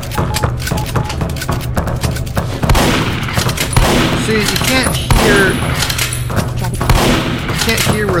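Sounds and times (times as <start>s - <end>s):
shotgun blasts from a video game: 0.2s - 6.2s, 6.8s - 8.1s.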